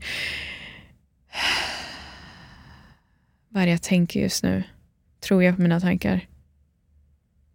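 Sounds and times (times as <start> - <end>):
person taking a deep breath: 0.0 - 3.2
speech: 3.6 - 6.3.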